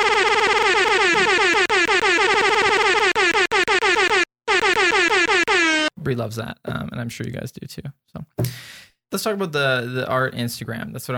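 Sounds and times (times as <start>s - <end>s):
air horn sound effect played from a phone soundboard: 0.0s - 5.9s
speech: 6.1s - 8.0s, 9.1s - 11.1s.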